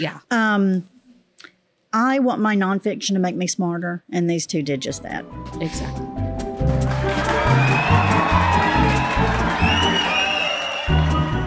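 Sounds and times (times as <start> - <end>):
speech: 0.0 - 0.9, 1.9 - 6.1
large crowd of fans cheering and roaring: 6.8 - 11.4
shrill whistles: 7.5 - 11.4.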